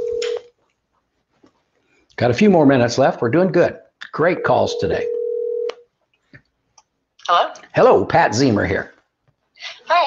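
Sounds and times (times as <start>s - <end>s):
telephone tone while dialing a call: 0.0s - 0.6s, 4.4s - 5.8s
speech: 2.2s - 5.2s, 7.3s - 8.9s.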